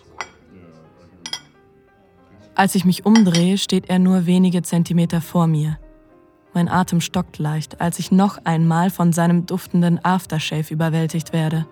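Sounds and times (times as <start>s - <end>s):
ceramic plates being set down in a kitchen sink: 0.0s - 0.5s, 1.2s - 1.6s, 3.1s - 3.6s
speech: 2.6s - 5.8s, 6.6s - 11.6s.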